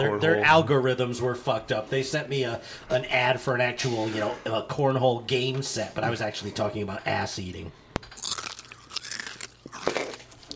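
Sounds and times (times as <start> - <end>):
speech: 0.0 - 8.2
loud crunchy chewing: 8.1 - 10.5.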